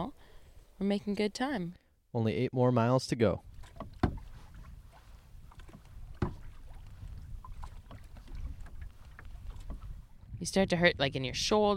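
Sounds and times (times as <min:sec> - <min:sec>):
light wind on a hot day in Quetico: 0:00.0 - 0:11.7
speech: 0:00.8 - 0:03.5, 0:10.4 - 0:11.7
canoe paddle dipping and pulling through water in Quetico: 0:03.4 - 0:10.3.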